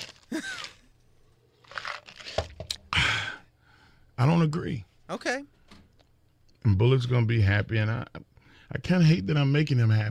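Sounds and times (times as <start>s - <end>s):
plastic bottle crinkling while someone sips water: 0.0s - 0.9s, 1.6s - 2.8s
plastic bottle squeeze: 1.6s - 2.8s
speech: 4.2s - 5.6s, 6.6s - 10.0s.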